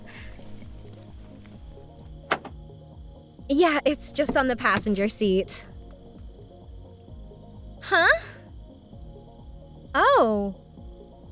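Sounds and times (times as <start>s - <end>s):
keys clipped to a purse jingling: 0.0s - 2.6s
low rumble: 0.0s - 11.3s
parked car lock releasing with a metallic click: 2.2s - 2.6s, 4.2s - 5.2s
speech: 3.5s - 5.7s.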